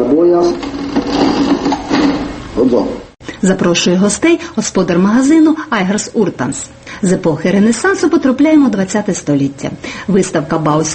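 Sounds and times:
speech: 0.3 - 1.2, 2.6 - 10.9
antique mechanical cash register clattering in a colonial goods shop in Latvia: 0.6 - 2.4.

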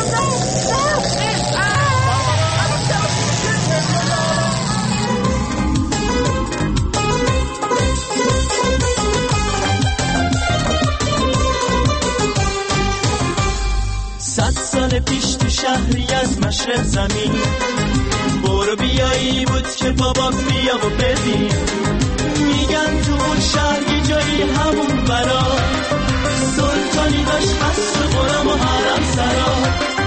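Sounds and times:
time machine powering up with warbling whir and electronic tones: 0.0 - 6.9
steady rhythmic music: 0.0 - 30.0
speech: 19.0 - 21.9.

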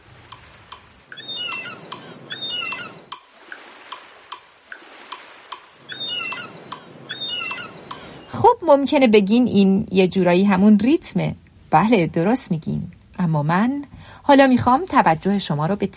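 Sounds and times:
waves hitting the shore: 0.0 - 8.4
short high seagull cries: 1.1 - 3.1, 5.8 - 8.3
speech: 8.6 - 15.9.

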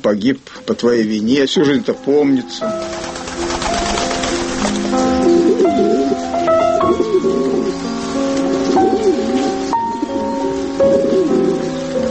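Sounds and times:
speech: 0.0 - 3.2
pigeon cooing during courtship: 2.6 - 12.1.

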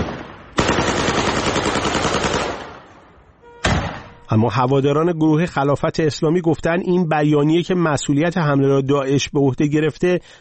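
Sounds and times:
automatic gunfire fired into the air: 0.0 - 2.8
gunfire echoes: 0.0 - 4.2
speech: 4.3 - 10.4.

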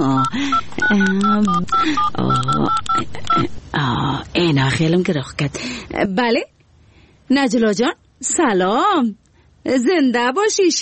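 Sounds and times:
phone number being punched in on a telephone keypad: 0.0 - 3.5
speech: 0.2 - 6.5, 7.3 - 10.8.

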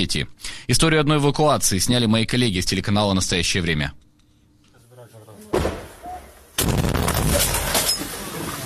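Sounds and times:
speech: 0.0 - 4.0
explosions in street fighting: 6.6 - 7.8
gunfire and artillery from street fighting: 6.6 - 8.2.

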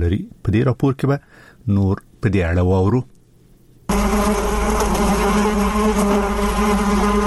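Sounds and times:
speech: 0.0 - 3.1
honeybees buzzing while collecting nectar from flowers on a farm in Nangarhar province: 3.9 - 7.2.

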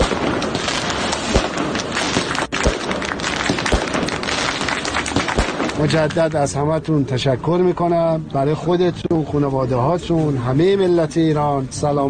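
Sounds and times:
firecrackers and fireworks exploding: 0.0 - 6.3
loud constant outdoor noise: 0.0 - 12.0
speech: 5.8 - 12.0.

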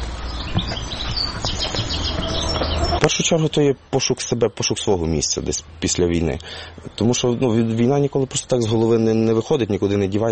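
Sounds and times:
birds chirping and twittering: 0.0 - 10.3
steady outdoor hum: 0.0 - 10.3
speech: 3.0 - 10.3.

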